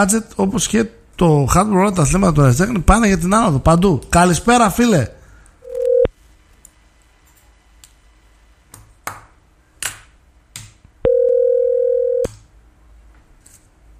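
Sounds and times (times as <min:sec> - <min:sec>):
speech: 0:00.0 - 0:05.2
telephone line tone during call attempt: 0:05.6 - 0:06.1, 0:11.0 - 0:12.3.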